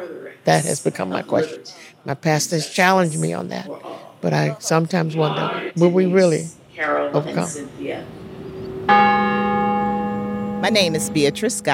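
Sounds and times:
speech: 0.4 - 8.2, 10.6 - 11.7
church bell ringing with sustained metallic tone: 8.6 - 11.7.

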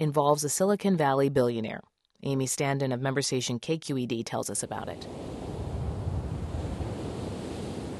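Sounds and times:
speech: 0.0 - 5.5
surf washing and rumbling at Martins Beach, California: 4.9 - 7.9
gusty wind buffeting the microphone on a windy gray day: 5.0 - 7.9.

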